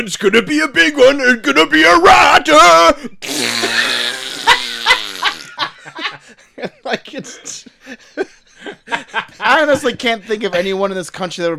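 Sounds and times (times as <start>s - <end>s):
speech: 0.0s - 3.9s, 6.9s - 8.3s, 9.4s - 11.5s
person blowing a mouth-farting raspberry: 3.2s - 5.6s
laughter: 3.6s - 10.0s.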